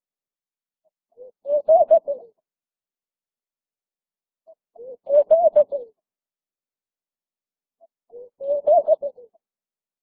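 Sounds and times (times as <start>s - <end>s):
Laughing dove cooing: 1.2s - 2.4s, 4.8s - 6.0s, 8.1s - 9.4s.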